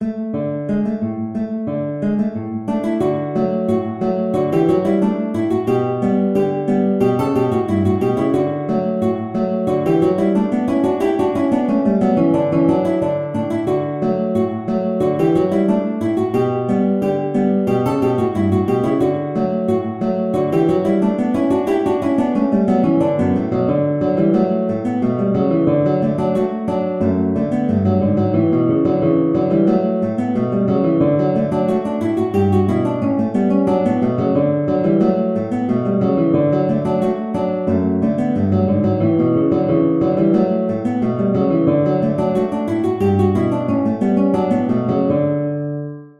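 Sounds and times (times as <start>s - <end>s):
guitar duet on two guitars: 0.0s - 46.1s.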